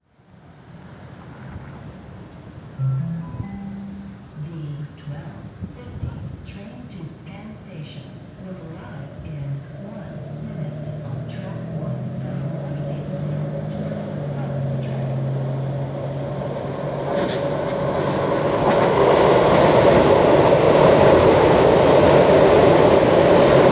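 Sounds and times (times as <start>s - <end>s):
train arriving: 0.4s - 23.7s.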